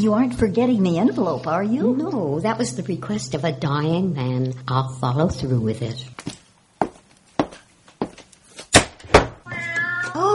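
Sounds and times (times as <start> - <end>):
speech: 0.0 - 6.4
sharp footsteps or knocks: 6.2 - 9.4
black cat meowing: 9.5 - 10.3.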